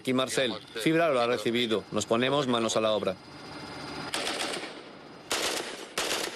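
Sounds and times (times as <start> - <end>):
speech: 0.0 - 3.5
gunfire bursts: 4.1 - 6.3.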